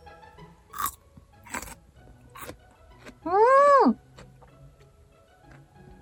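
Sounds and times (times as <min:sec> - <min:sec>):
crunching bites into a fresh juicy cucumber: 0:00.8 - 0:03.2
faint chewing: 0:00.8 - 0:03.2, 0:04.1 - 0:05.6.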